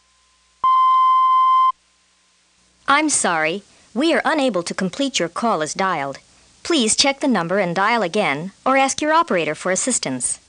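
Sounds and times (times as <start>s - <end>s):
steady pure medium-pitch cueing tone beep from a master tape: 0.0s - 1.8s
speech: 2.9s - 10.4s.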